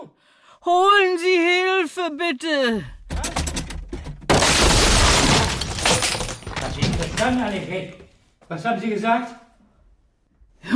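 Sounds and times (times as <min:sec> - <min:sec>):
speech: 0:00.6 - 0:03.0, 0:07.0 - 0:09.4
door being kicked in: 0:03.1 - 0:07.5
loud splintering crash of a door: 0:04.3 - 0:07.5.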